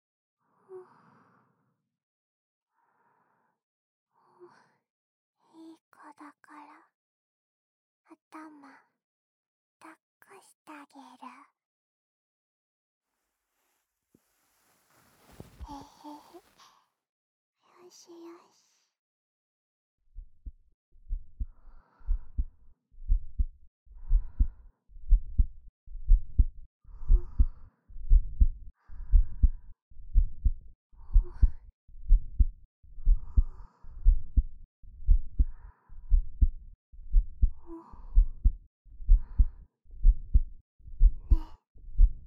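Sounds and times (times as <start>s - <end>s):
speech: 8.3s - 8.9s, 9.8s - 11.5s, 17.9s - 18.6s
slow steady heartbeat: 20.1s - 42.2s.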